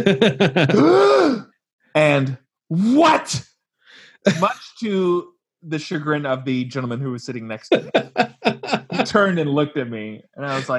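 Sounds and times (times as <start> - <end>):
laughter: 0.0 - 1.0, 4.3 - 4.7, 7.6 - 9.5
speech: 0.0 - 3.5, 4.2 - 8.4, 9.0 - 10.7
person imitating a gasp: 0.7 - 1.6.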